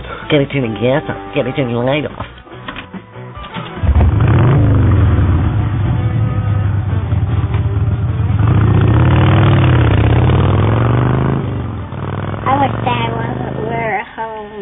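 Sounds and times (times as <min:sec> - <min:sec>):
speech: 0:00.3 - 0:02.3
motorcycle engine starting, idling and revving: 0:03.4 - 0:14.2.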